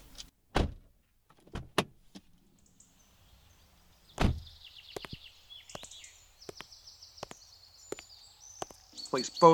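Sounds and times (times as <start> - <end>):
heavy car door thuds in a garage: 0.1 - 2.0, 4.2 - 4.5
speech: 9.1 - 9.5.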